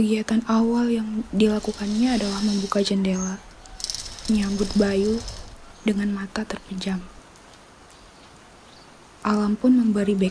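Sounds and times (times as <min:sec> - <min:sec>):
speech: 0:00.0 - 0:03.5, 0:04.3 - 0:07.1, 0:09.2 - 0:10.2
light raindrops pattering softly on the ground: 0:07.2 - 0:10.2.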